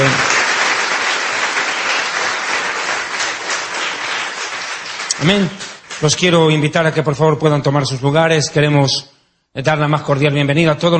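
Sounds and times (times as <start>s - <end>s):
congregation applauding at a church worship service: 0.0s - 6.7s
speech: 5.2s - 10.9s.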